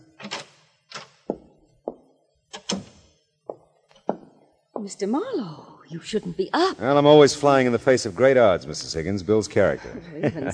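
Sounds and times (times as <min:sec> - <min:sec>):
door being unlocked and opened: 0:00.0 - 0:01.5, 0:02.5 - 0:03.0
speech: 0:04.8 - 0:10.5
laughter: 0:09.8 - 0:10.5.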